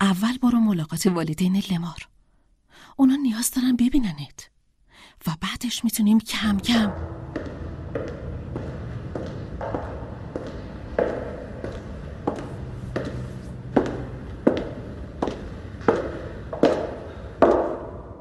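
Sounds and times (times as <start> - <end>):
speech: 0.9 - 2.2, 3.0 - 4.5, 5.1 - 7.6
footsteps of boots striking a hard floor: 6.6 - 18.1.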